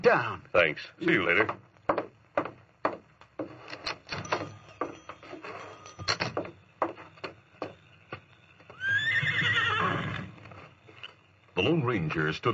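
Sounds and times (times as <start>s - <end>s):
speech: 0.0s - 1.7s, 11.9s - 12.5s
horse hooves clip-clopping as a rider mounts: 1.0s - 12.3s
loud sustained horse whinny: 8.7s - 10.4s.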